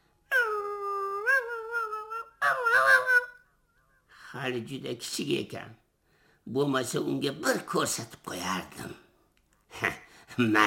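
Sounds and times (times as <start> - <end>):
puppy whining howls: 0.3 - 3.4
speech: 4.4 - 5.8, 6.5 - 9.0, 9.8 - 10.6.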